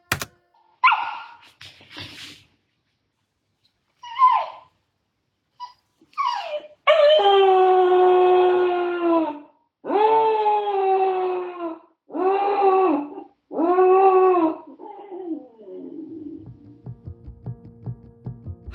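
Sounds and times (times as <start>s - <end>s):
small puppy left alone at home whimpering and howling: 5.6s - 16.4s.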